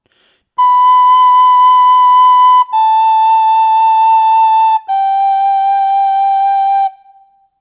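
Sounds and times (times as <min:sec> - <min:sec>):
Galician bagpipe chanter tuning with vibrato blowing: 0:00.6 - 0:07.1.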